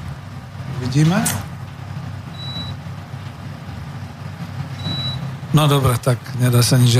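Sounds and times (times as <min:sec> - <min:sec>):
air conditioner running with steady low hum: 0:00.0 - 0:06.9
speech: 0:00.8 - 0:01.5, 0:05.5 - 0:06.9
short high electronic beeps: 0:02.3 - 0:02.8, 0:04.8 - 0:05.3.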